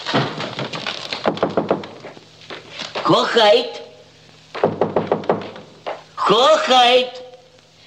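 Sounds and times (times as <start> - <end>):
knocking on a door: 0.1 - 2.0, 4.5 - 6.0
speech: 3.1 - 3.8, 6.3 - 7.2.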